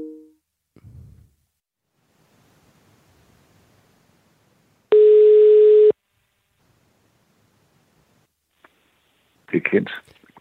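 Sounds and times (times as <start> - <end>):
telephone dial tone while calling back: 4.9 - 5.9
speech: 9.7 - 10.2.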